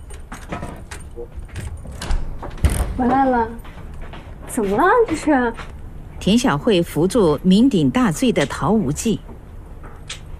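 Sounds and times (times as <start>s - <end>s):
keys rattling at a rented room door: 0.0s - 3.0s
rented room door unlatched and pushed open: 0.0s - 4.3s
speech: 1.2s - 1.6s, 3.0s - 3.7s, 4.5s - 9.3s.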